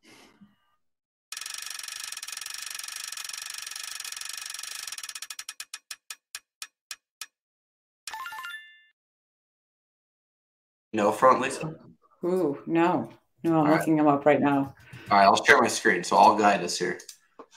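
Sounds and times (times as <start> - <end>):
prize wheel spinning with ratcheting clicks: 1.3 - 7.3
speech: 11.0 - 17.1.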